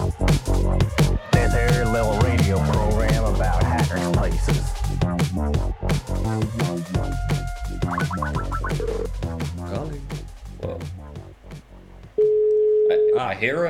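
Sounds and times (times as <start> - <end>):
busy musical bed: 0.0 - 12.2
telephone line tones: 12.2 - 13.1.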